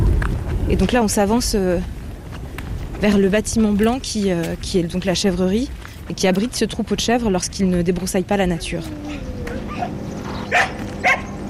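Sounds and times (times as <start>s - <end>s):
steady hum: 0.0s - 11.4s
speech: 0.7s - 2.0s, 3.0s - 9.3s
sheepdog barking at a goat farm: 9.0s - 11.4s.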